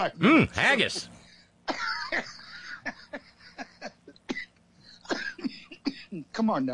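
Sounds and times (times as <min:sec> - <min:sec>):
speech: 0:00.0 - 0:03.2, 0:06.4 - 0:06.7
person coughing harshly: 0:01.7 - 0:02.2, 0:04.3 - 0:06.2.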